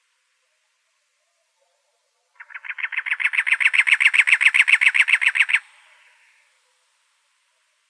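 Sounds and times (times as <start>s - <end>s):
Cactus wren churring chatter in Arizona: 2.4s - 6.4s.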